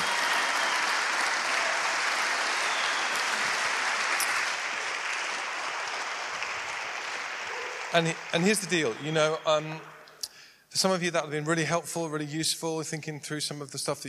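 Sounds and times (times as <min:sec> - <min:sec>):
audience applause at a gathering where marriages are prayed for: 0:00.0 - 0:10.1
speech: 0:07.9 - 0:10.0, 0:10.8 - 0:14.0.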